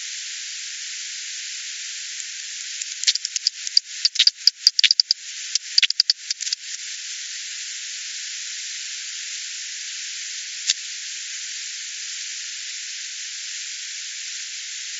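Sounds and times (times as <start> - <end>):
steady hiss: 0.0 - 14.9
bat calls with sharp clicks: 2.8 - 6.6.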